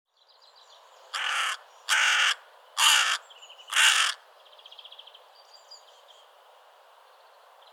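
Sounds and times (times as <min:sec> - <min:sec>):
carrion crow Corvus corone giving harsh hoarse caws: 0:01.1 - 0:04.2.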